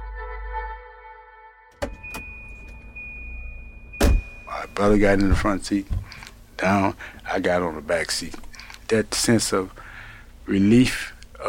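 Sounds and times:
sharp clunks: 1.8 - 2.9, 3.9 - 6.3
car engine idling: 1.8 - 11.4
speech: 4.6 - 9.8, 10.5 - 11.4.

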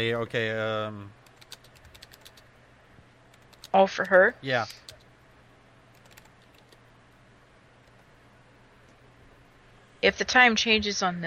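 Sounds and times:
speech: 0.0 - 1.2, 3.7 - 4.9, 10.0 - 11.2
low electrical hum: 0.0 - 11.2
typing on a computer keyboard: 1.2 - 2.5, 3.3 - 5.1, 5.9 - 6.8.

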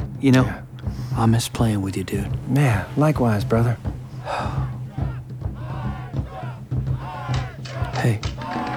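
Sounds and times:
speech: 0.2 - 0.6, 1.2 - 4.6, 8.0 - 8.3
crowd cheering and shouting: 4.8 - 8.7.

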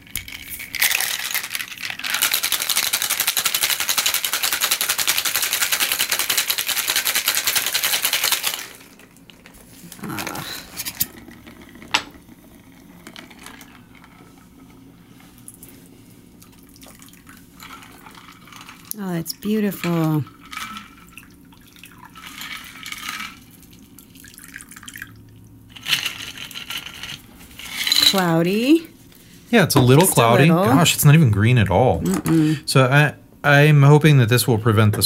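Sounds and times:
cocktail shaker full of ice shaken hard: 0.0 - 9.2, 17.6 - 25.0, 25.7 - 28.4
speech: 19.2 - 20.4, 28.2 - 28.9, 29.5 - 35.0
shaken cocktail poured into a glass: 20.3 - 25.4.

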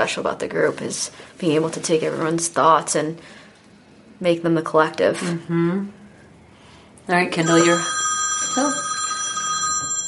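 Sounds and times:
speech: 0.0 - 3.4, 4.2 - 6.0, 7.1 - 8.0, 8.6 - 8.8
telephone ringing with steady electronic tones: 7.4 - 10.0.

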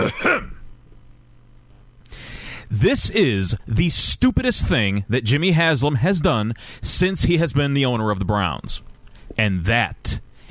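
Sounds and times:
speech: 0.0 - 0.6, 2.7 - 10.3
throat clearing: 0.0 - 0.6
faint low hum: 0.0 - 10.4.

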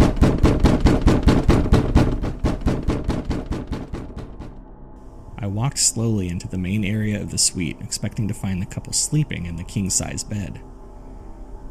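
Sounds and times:
man pounding on a hotel suite door: 0.0 - 4.6
speech: 5.7 - 10.7.

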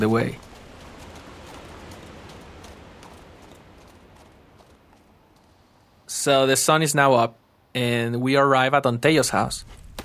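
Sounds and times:
speech: 0.0 - 0.4, 6.2 - 9.8
horse hooves clip-clopping at a walk: 0.0 - 6.1, 9.6 - 10.0
dense hissing background: 0.0 - 9.8.

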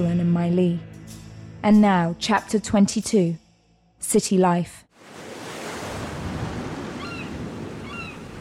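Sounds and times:
speech: 0.0 - 0.9, 1.6 - 3.4, 4.0 - 4.8
soft surf of the calm Philippine Sea at sunrise: 4.9 - 8.3
faint bird calls over the water: 6.9 - 8.3.

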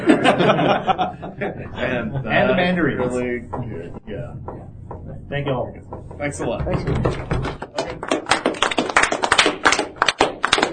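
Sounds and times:
laughter: 0.0 - 2.8
speech: 0.4 - 7.7
small audience clapping: 7.0 - 10.7.

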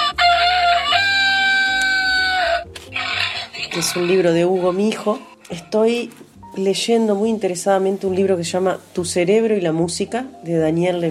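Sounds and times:
rooster crow from a toy sound button in a children's farm animal book: 0.0 - 2.7
speech: 3.8 - 11.0.

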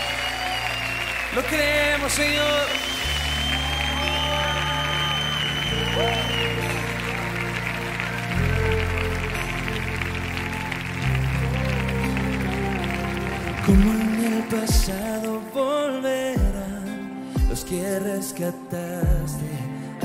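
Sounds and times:
church audience applauding: 0.0 - 15.7
loud sustained worship music with deep bass notes: 0.0 - 20.0
speech: 1.3 - 3.0, 13.7 - 16.9, 17.6 - 19.8.

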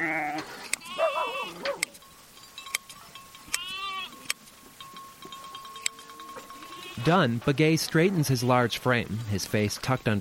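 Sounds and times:
ewe bleating during hand shearing: 0.0 - 1.6, 3.5 - 4.3, 6.6 - 7.2
speech: 7.0 - 10.1.

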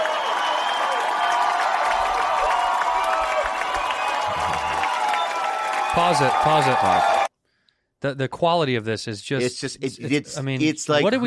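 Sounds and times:
crowd applauding: 0.0 - 7.3
speech: 6.0 - 7.2, 8.0 - 11.2.

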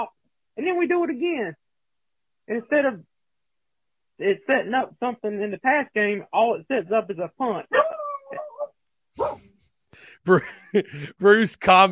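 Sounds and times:
speech: 0.0 - 1.6, 2.5 - 3.1, 4.2 - 8.4, 10.0 - 11.9
dog barking in a voicemail message over a phone line: 9.2 - 9.4
laughter: 10.3 - 11.5.

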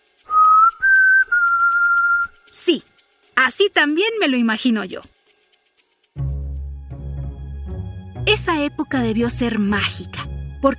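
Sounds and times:
person whistling imitating birdsong: 0.3 - 2.5
speech: 2.7 - 5.2, 8.4 - 10.7.

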